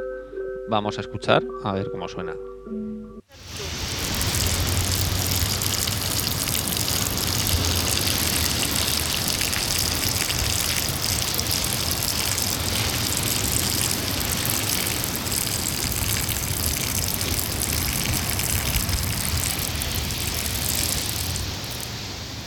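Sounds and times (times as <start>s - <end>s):
speech: 0.7s - 3.5s
powerful stream of urine falling on sand: 3.4s - 22.4s
waves in background: 3.4s - 22.4s.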